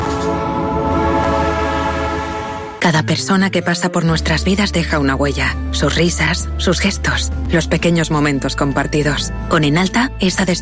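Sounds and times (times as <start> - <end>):
historic train rumbling at a heritage railway event: 0.0 - 2.8
horn-like tonal drone of a historic train: 0.0 - 2.9
speech: 2.8 - 10.6.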